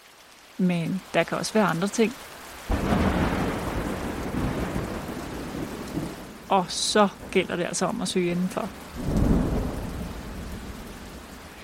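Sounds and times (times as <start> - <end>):
heavy rain: 0.0 - 11.6
speech: 0.6 - 3.1, 6.5 - 9.2
thunder from a cumulonimbus storm cloud: 2.7 - 11.6.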